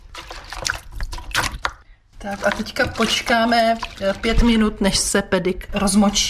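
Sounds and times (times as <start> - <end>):
trickling liquid: 0.0 - 5.0
wicker stakes lowered into water, sloshing and splashing: 0.0 - 6.2
speech: 2.2 - 6.2.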